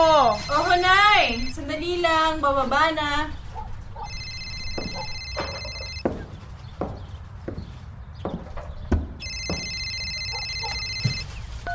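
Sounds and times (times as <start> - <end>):
telephone ringing with electronic trilling: 0.0 - 1.8, 4.0 - 6.0, 9.2 - 11.3
speech: 0.4 - 3.4
scattered knocks: 4.1 - 11.2.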